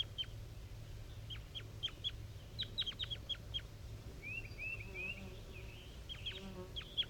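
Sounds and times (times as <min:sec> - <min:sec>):
steady low hum: 0:00.0 - 0:07.0
wild bird chirping and warbling: 0:01.1 - 0:07.0.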